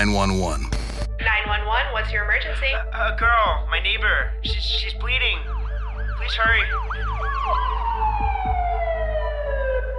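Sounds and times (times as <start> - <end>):
speech: 0.0 - 0.7, 1.5 - 5.6, 6.2 - 7.9
police sirens wailing at a home where a girl has been stabbed: 5.2 - 9.9.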